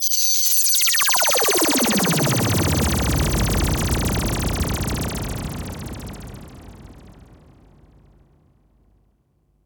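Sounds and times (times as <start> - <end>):
laser sounds: 0.7 - 6.2.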